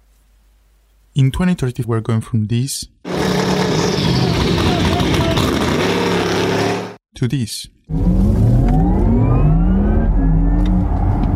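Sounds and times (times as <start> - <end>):
speech: 1.2 - 4.2, 7.2 - 8.4
petrol car engine revving through gear changes: 3.1 - 7.0, 7.9 - 11.3.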